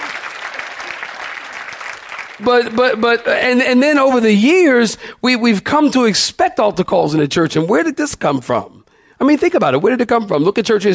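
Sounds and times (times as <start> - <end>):
congregation clapping hands: 0.0 - 4.0
speech: 2.4 - 10.9.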